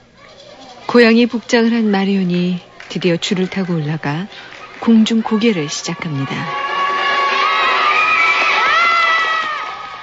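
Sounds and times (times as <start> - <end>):
speech: 1.0 - 6.6
children cheering and shouting: 4.4 - 10.0.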